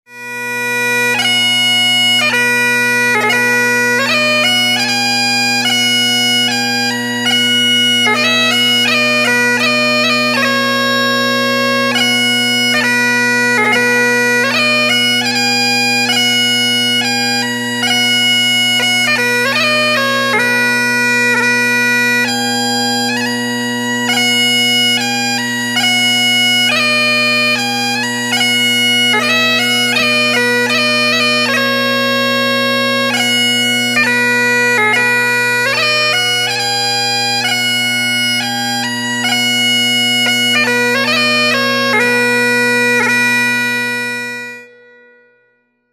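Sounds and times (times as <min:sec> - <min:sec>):
wedding bagpipe music: 0:00.0 - 0:45.6.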